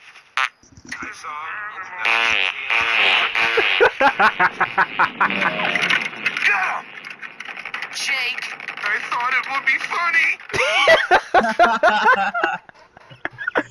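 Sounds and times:
speech: 1.2s - 5.9s, 9.2s - 12.6s
cartoon-style farting from a cartoon dog character: 1.8s - 9.0s
laughter: 3.4s - 6.0s, 10.5s - 13.7s.

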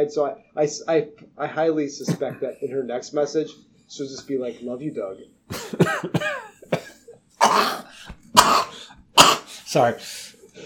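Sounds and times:
speech: 0.0s - 6.5s, 9.7s - 10.6s
harsh coughs from one person: 5.5s - 9.6s
throat clearing from one person: 5.5s - 9.6s.

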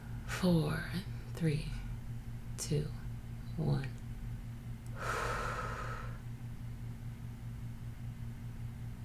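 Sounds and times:
low hum: 0.0s - 9.0s
speech: 0.4s - 1.8s, 2.6s - 3.0s, 3.6s - 4.0s
slow deep breath during a guided breathing exercise: 4.9s - 6.2s.

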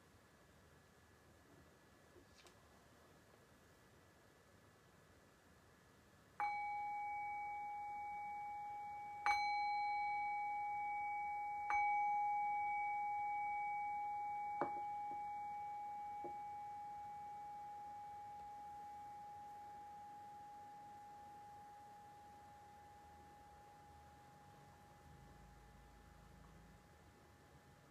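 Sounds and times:
meditation bell ringing: 6.4s - 26.9s.

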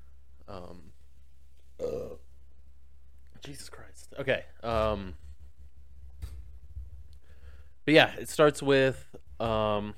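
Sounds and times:
low steady hum: 0.0s - 9.9s
person burping: 1.8s - 2.2s
speech: 3.4s - 5.3s, 7.9s - 9.9s.

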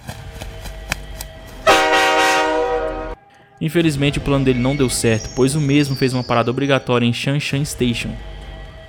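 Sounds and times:
freight train horn blast: 1.6s - 3.3s
speech: 3.6s - 8.3s.

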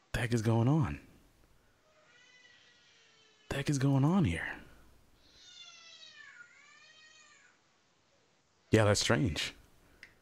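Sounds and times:
speech: 0.2s - 1.1s, 3.6s - 4.6s, 8.7s - 9.6s
cat meowing: 1.9s - 3.5s, 5.2s - 7.6s.

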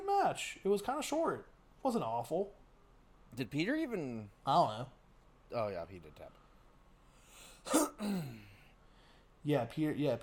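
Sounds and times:
speech: 0.2s - 2.6s, 3.3s - 6.4s, 7.6s - 8.5s, 9.4s - 10.2s
harsh throat clearing: 7.7s - 8.6s.

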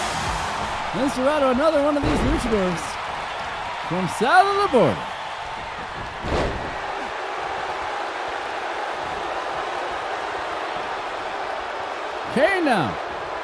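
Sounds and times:
crowd noise: 0.0s - 13.4s
speech: 0.9s - 2.9s, 3.9s - 5.1s, 12.4s - 13.0s
wrestler body slam thud: 6.2s - 7.0s.

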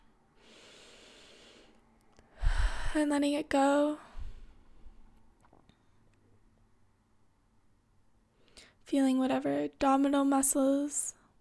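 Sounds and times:
deep breath in through the nose during a guided breathing exercise: 0.4s - 1.8s, 2.4s - 3.0s
speech: 2.9s - 4.1s, 8.9s - 11.2s.

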